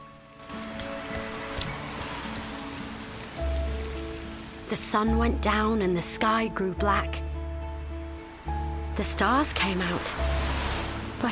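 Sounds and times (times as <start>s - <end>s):
steady rain: 0.0s - 6.2s, 8.0s - 11.3s
speech: 4.7s - 7.3s, 9.0s - 10.5s.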